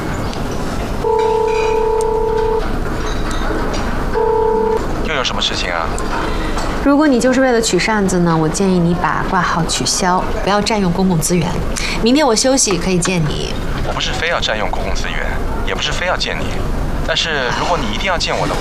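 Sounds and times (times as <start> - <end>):
low hum: 0.0 - 18.5
steady electronic phone tone: 1.0 - 2.7, 4.1 - 4.8.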